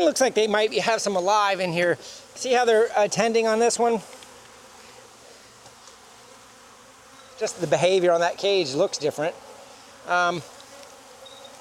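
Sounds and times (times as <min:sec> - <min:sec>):
speech: 0:00.0 - 0:04.2, 0:07.4 - 0:09.5, 0:10.1 - 0:10.5
honey bees buzzing in a queen bank: 0:00.0 - 0:11.5.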